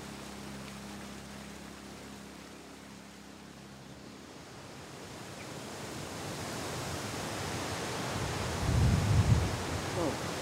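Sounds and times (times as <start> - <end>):
wind blowing outdoors: 0.0 - 10.4.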